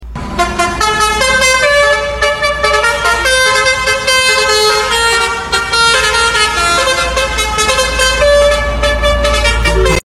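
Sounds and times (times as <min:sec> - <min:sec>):
basuri horn playing: 0:00.4 - 0:10.0
basuri flute playing: 0:04.3 - 0:10.0.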